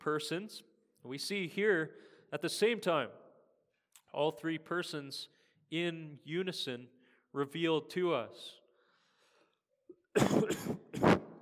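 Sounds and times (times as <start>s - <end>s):
speech: 0.0s - 3.2s, 4.1s - 8.6s, 10.2s - 11.1s
person coughing: 10.2s - 11.3s.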